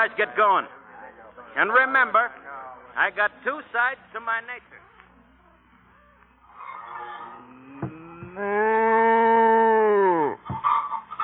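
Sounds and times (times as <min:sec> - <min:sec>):
speech: 0:00.0 - 0:00.8, 0:01.5 - 0:02.4, 0:03.0 - 0:04.8
cow mooing in a barn on a work farm: 0:06.5 - 0:10.4.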